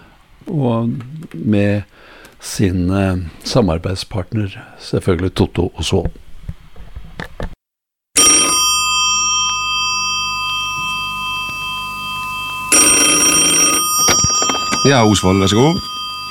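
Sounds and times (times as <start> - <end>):
speech: 0.5 - 6.2, 14.9 - 15.9
loud old-style metallic telephone bell ringing: 8.2 - 16.2
steady tonal hum: 8.5 - 16.2.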